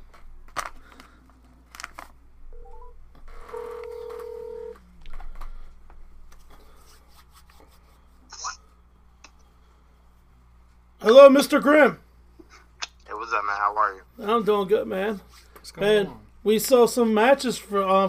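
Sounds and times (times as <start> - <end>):
steady phone tone: 2.5 - 4.8
speech: 11.1 - 12.0, 14.3 - 18.0.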